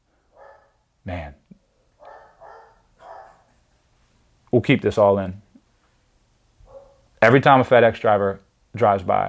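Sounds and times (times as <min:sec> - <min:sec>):
dog barking: 0:00.3 - 0:00.8, 0:02.0 - 0:03.6, 0:06.6 - 0:07.1
speech: 0:01.0 - 0:01.4, 0:04.5 - 0:05.4, 0:07.2 - 0:09.2.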